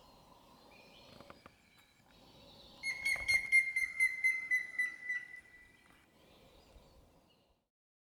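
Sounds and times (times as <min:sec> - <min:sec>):
grey-headed woodpecker whistled call: 0:02.8 - 0:05.7.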